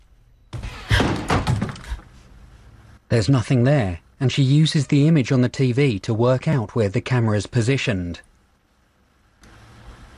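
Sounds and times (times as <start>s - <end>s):
slightly ajar door being kicked open: 0.5s - 2.1s
speech: 3.1s - 8.3s.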